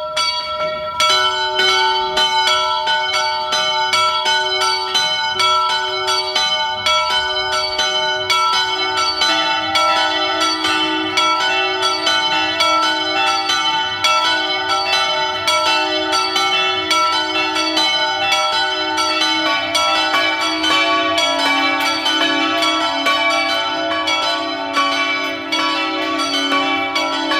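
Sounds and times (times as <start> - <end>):
several church bells ringing in a full peal: 0.0 - 27.3.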